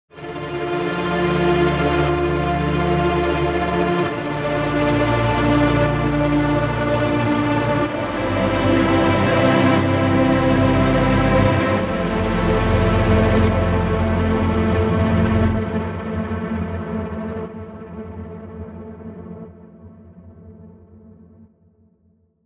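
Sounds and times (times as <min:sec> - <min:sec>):
analog strings: 0:00.1 - 0:17.4.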